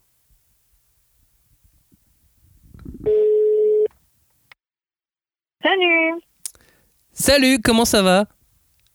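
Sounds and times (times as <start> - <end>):
ringback tone from an outgoing phone call: 3.1 - 3.9
speech: 7.2 - 8.4.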